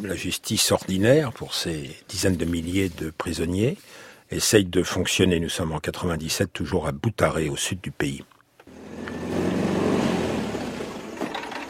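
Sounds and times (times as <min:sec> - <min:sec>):
speech: 0:00.0 - 0:08.4
truck engine rumble at a courthouse in Butare Rwanda: 0:08.7 - 0:11.6.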